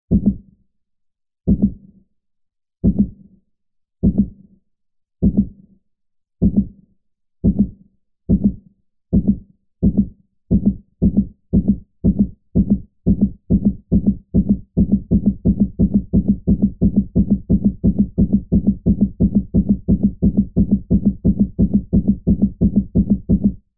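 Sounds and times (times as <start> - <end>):
heartbeat speeding up: 0.1 - 0.5, 1.5 - 1.8, 2.8 - 3.2, 4.0 - 4.4, 5.2 - 5.6, 6.4 - 6.8, 7.4 - 23.7.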